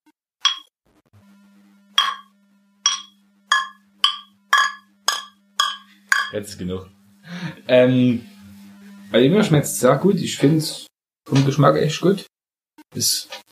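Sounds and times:
beer glasses clinking in a toast: 2.9 - 6.4
speech: 6.3 - 8.3, 9.1 - 12.3, 12.9 - 13.4.

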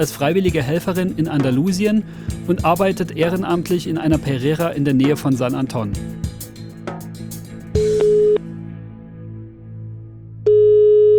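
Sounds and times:
speech: 0.0 - 6.3
telephone ringing tone of a call to Spain: 8.0 - 8.4, 10.5 - 11.1.

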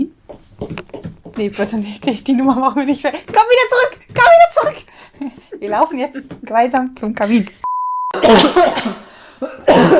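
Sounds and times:
speech: 1.4 - 4.9, 5.6 - 7.6
short steady beep: 7.6 - 8.2
two people coughing harshly: 8.1 - 9.9.

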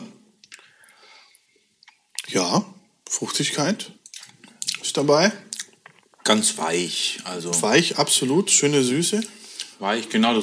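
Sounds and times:
wet mouth sounds of tasting: 0.4 - 0.8, 1.8 - 2.3, 4.0 - 4.9, 5.5 - 6.2
speech: 2.3 - 4.0, 5.0 - 5.5, 6.3 - 10.4.

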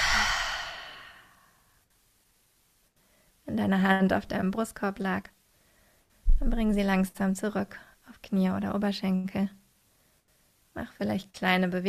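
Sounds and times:
deep breath in through the nose, out through the mouth: 0.0 - 1.6
speech: 3.6 - 5.4, 6.4 - 9.6, 10.8 - 11.8.

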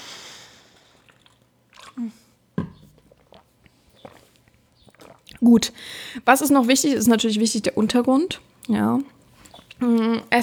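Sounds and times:
person sipping a drink and swallowing: 0.7 - 6.2
speech: 2.0 - 2.3, 5.4 - 9.1, 9.8 - 10.4.

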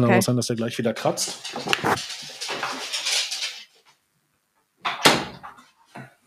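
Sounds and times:
speech: 0.0 - 2.1
shuffling as a dog is let out: 1.2 - 3.5
door shutting with a firm thump: 4.9 - 5.4.

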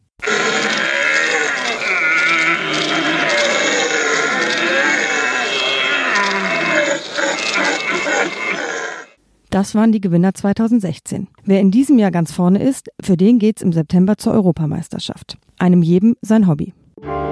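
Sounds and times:
person imitating red deer stag rutting calls in a stag-calling competition: 0.2 - 9.2
speech: 9.5 - 17.2.

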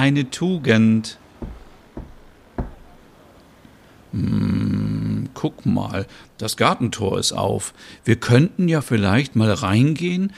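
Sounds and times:
speech: 0.0 - 1.2, 4.2 - 4.5, 5.4 - 10.3
knocking on a door: 1.4 - 3.0.

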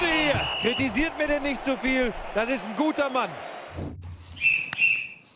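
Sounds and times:
referee whistle blast for kick-off: 0.1 - 0.9, 4.3 - 5.3
speech: 0.8 - 3.9.

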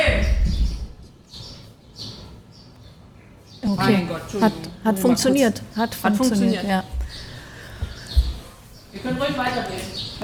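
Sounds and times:
sparrows chirping: 0.0 - 10.2
speech: 3.6 - 7.0, 9.0 - 10.2.

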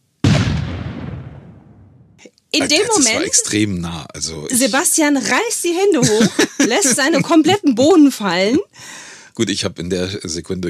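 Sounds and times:
loud gunshot with rumbling echo: 0.2 - 2.2
speech: 2.5 - 10.6
laughter: 2.6 - 10.6.

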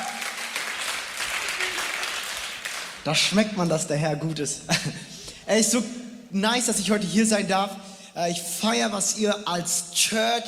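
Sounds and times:
audience applause at a youth church gathering in Wuppertal: 0.0 - 3.0
speech: 3.0 - 10.4.

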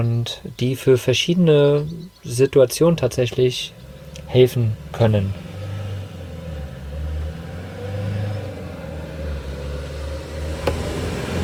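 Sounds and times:
speech: 0.0 - 5.5
car engine rumbling as the car drives past: 3.0 - 11.4.

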